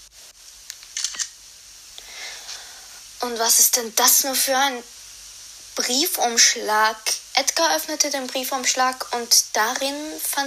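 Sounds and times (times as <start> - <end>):
faint hiss: 0.0 - 10.4
camera shutter clicks taking a photo: 0.7 - 1.4
speech: 3.2 - 5.0, 5.8 - 10.4.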